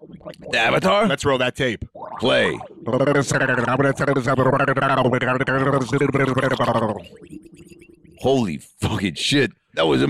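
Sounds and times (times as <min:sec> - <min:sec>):
speech: 0:00.2 - 0:07.4, 0:08.2 - 0:10.0
person gargling imitating underwater bubbling: 0:02.0 - 0:07.2.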